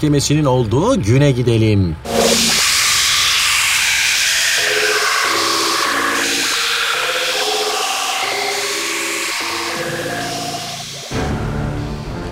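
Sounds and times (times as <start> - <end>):
speech: 0.0 - 2.4
loud sustained sci-fi hiss with shifting electronic tones: 2.1 - 11.3.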